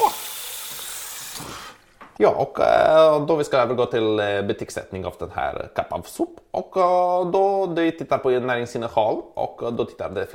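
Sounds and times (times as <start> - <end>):
cold water running from a tap: 0.0 - 1.8
speech: 2.2 - 10.3.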